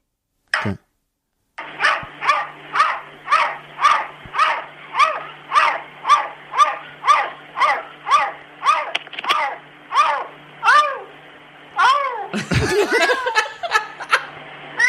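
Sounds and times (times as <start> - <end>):
cat barking out of a window like a dog: 1.6 - 11.1, 11.8 - 12.3
laughter: 12.3 - 14.3.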